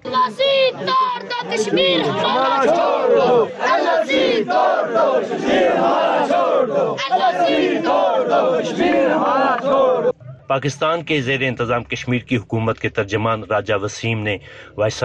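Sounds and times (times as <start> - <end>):
large crowd of marchers in Pakistan-administered Kashmir chanting slogans: 0.0 - 10.2
speech: 7.3 - 15.0.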